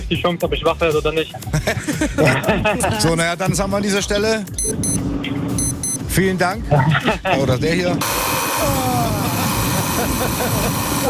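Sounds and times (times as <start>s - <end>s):
speech: 0.1s - 5.4s, 6.1s - 8.8s, 10.2s - 11.0s
laughter: 1.3s - 3.3s, 6.6s - 7.8s, 8.6s - 11.0s
alarm clock beeping in high electronic tones: 4.6s - 6.1s.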